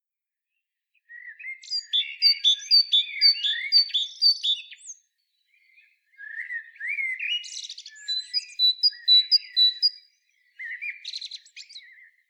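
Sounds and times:
Great tit Parus major calls: 1.2s - 12.2s.

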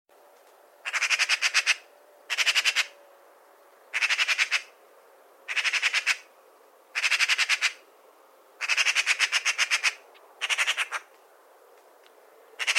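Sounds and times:
Eurasian magpie Pica pica rattling chatter: 0.9s - 2.9s, 3.9s - 4.7s, 5.5s - 6.2s, 7.0s - 7.8s, 8.6s - 11.1s, 12.6s - 12.7s.

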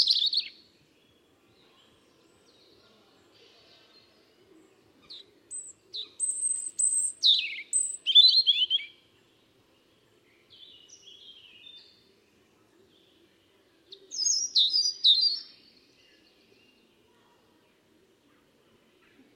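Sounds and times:
European robin song: 0.0s - 0.6s, 5.1s - 9.0s, 14.2s - 15.6s.

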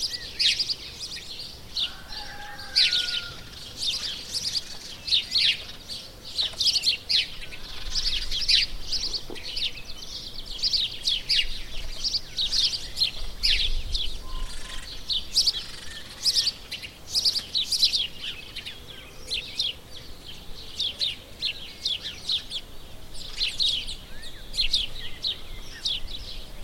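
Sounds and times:
house sparrow Passer domesticus chirping: 0.0s - 26.6s.

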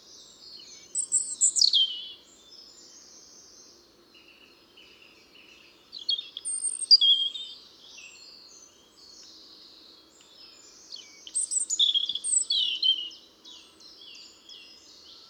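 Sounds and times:
European robin Erithacus rubecula singing: 0.0s - 15.2s.

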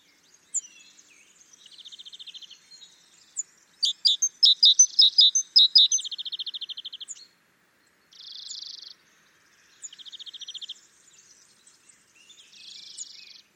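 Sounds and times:
great tit Parus major calling: 3.8s - 6.9s.

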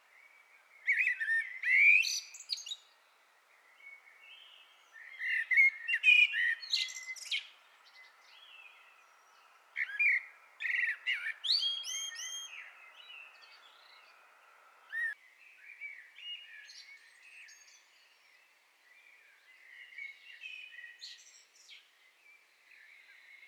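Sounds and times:
common blackbird singing: 0.1s - 21.9s.

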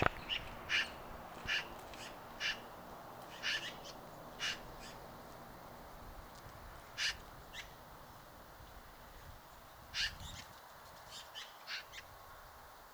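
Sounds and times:
Eurasian magpie Pica pica giving harsh dry chack notes: 0.0s - 5.1s, 7.0s - 7.7s.

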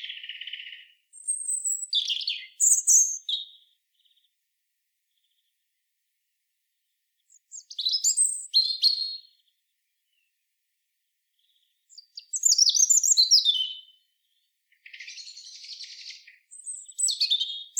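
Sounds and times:
European robin Erithacus rubecula singing whistles and twittering trills: 0.0s - 3.7s, 7.3s - 9.4s, 11.4s - 14.1s, 14.8s - 17.7s.

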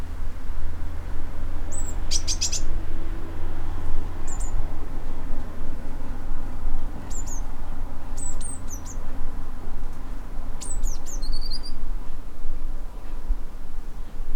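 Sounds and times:
steady low rumble: 0.0s - 14.3s
Eurasian blue tit Cyanistes caeruleus calls: 1.7s - 2.7s, 4.3s - 4.6s, 7.0s - 7.5s, 8.2s - 9.0s, 10.6s - 11.8s.

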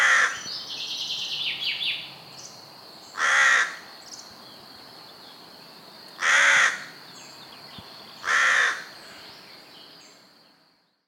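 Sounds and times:
Carrion crow cawing: 0.0s - 0.4s, 3.2s - 3.9s, 6.2s - 7.0s, 8.2s - 9.2s.

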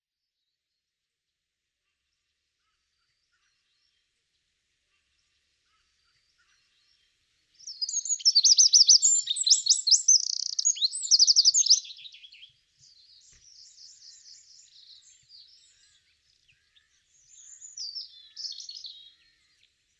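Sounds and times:
Eurasian wren Troglodytes troglodytes singing: 7.6s - 19.9s.

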